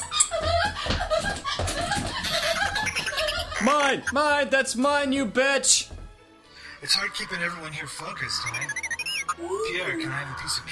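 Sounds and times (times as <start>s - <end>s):
laughter: 0.0s - 4.1s
rubber squeaky toy squeaking: 2.7s - 4.2s, 8.2s - 10.0s
speech: 3.7s - 6.0s, 6.8s - 10.6s.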